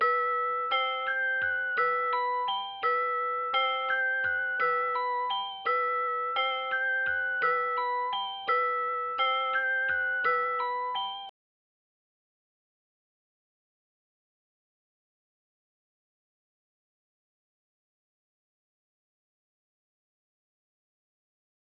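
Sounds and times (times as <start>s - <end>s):
85 BPM E minor vibraphone loop: 0.0s - 11.3s.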